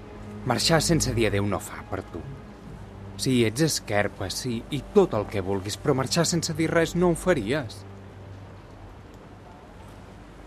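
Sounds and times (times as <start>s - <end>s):
steady rain: 0.0s - 10.4s
speech: 0.4s - 2.5s, 3.2s - 7.9s.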